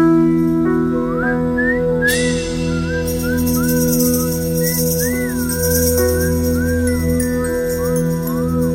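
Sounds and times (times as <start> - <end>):
man whistling a wandering lilting tune: 0.8 - 8.7
small bells jingling: 2.3 - 8.7.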